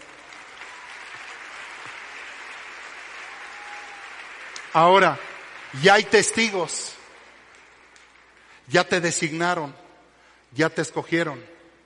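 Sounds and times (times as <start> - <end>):
audience applauding: 0.0 - 8.6
speech: 4.7 - 6.9, 8.7 - 9.8, 10.5 - 11.5.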